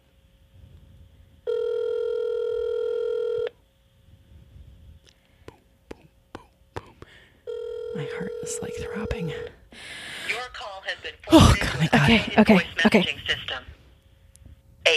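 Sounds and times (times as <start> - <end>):
ringback tone from an outgoing phone call: 1.5 - 3.5, 7.5 - 9.5
speech: 8.0 - 10.0, 11.0 - 13.7.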